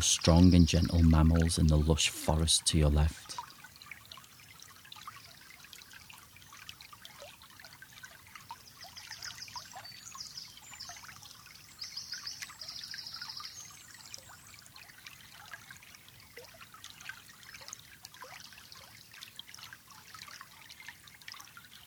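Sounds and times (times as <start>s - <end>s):
speech: 0.0s - 3.4s
river water trickling and flowing: 0.0s - 21.8s
faint high bird chirps: 8.8s - 14.4s.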